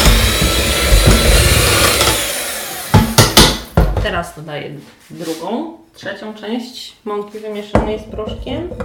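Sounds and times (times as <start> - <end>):
electric mixer on low speed mixing cake batter with freshly added flour: 0.0 - 3.7
speech: 4.2 - 8.8.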